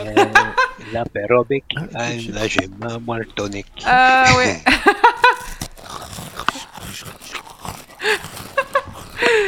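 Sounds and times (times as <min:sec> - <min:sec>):
laughter: 0:00.0 - 0:00.9, 0:04.6 - 0:05.6
speech: 0:00.9 - 0:05.5
crunching potato chips: 0:05.3 - 0:09.4.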